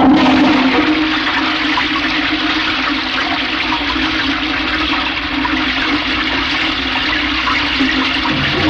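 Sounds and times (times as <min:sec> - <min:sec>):
toilet flushing: 0:00.0 - 0:08.6
low hum: 0:08.3 - 0:08.6.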